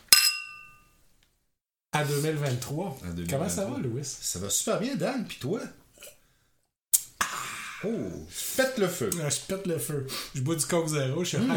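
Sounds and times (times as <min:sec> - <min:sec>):
glasses clinking in a toast: 0:00.0 - 0:01.0
speech: 0:02.0 - 0:06.2, 0:07.8 - 0:11.5.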